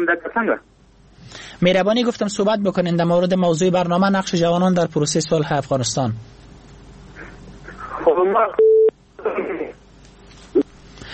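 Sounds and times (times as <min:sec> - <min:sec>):
speech: 0:00.0 - 0:06.5, 0:08.0 - 0:09.8
telephone tone as a phone call is cut off: 0:08.6 - 0:08.9.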